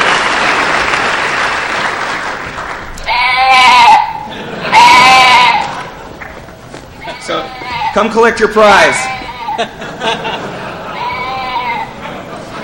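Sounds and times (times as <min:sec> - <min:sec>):
audience applause: 0:00.0 - 0:03.5, 0:05.6 - 0:07.2
loud goat-like bleats: 0:03.0 - 0:05.9, 0:07.0 - 0:09.7, 0:10.8 - 0:12.0
laughter: 0:04.0 - 0:07.8, 0:08.8 - 0:12.6
speech: 0:08.0 - 0:09.8.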